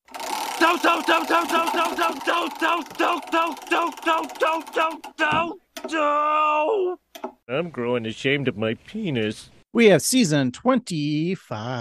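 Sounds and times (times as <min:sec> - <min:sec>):
prize wheel spinning with ratcheting ticks: 0:00.0 - 0:05.4
speech: 0:00.6 - 0:11.7.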